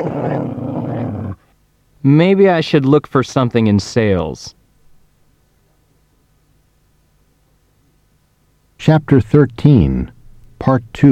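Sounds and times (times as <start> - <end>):
dog growling: 0.0 - 1.5
speech: 2.0 - 4.6, 8.8 - 11.1.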